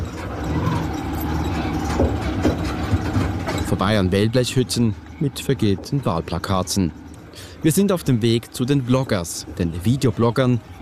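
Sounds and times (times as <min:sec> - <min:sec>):
sharp clanks of motorcycle tricycle jolting over rough surface: 0:00.0 - 0:07.3
rattling of motorcycle tricycle on rough gravel road: 0:00.0 - 0:09.2
motorcycle tricycle with metal cab engine drone on gravel roads in Davao Philippines: 0:00.0 - 0:10.8
speech: 0:03.7 - 0:10.8.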